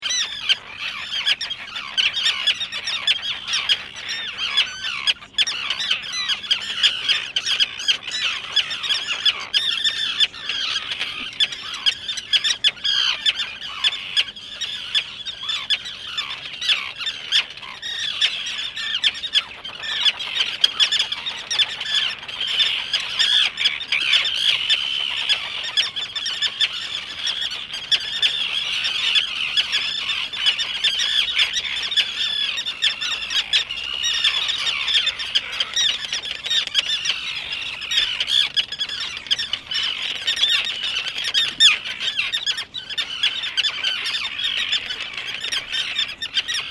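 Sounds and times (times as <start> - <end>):
common terns calling: 0.0 - 46.6.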